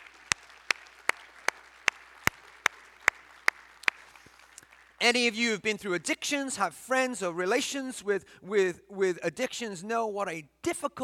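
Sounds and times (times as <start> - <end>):
congregation clapping in unison: 0.0 - 5.4
faint hiss of the room: 0.0 - 11.0
speech: 5.0 - 11.0.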